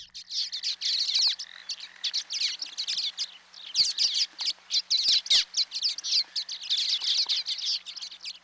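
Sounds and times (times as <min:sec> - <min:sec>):
common waxbills chirping and twittering in the lowlands of Hawaii: 0:00.0 - 0:08.4.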